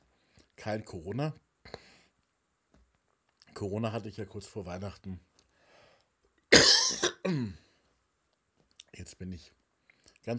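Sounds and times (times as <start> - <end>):
speech: 0.6 - 1.4, 3.6 - 5.3, 7.2 - 7.6, 9.0 - 9.6
harsh coughs: 6.5 - 7.6.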